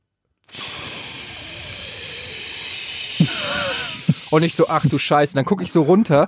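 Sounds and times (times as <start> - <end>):
voice imitating air hissing from a car tire: 0.5 - 5.3
speech: 4.3 - 6.2.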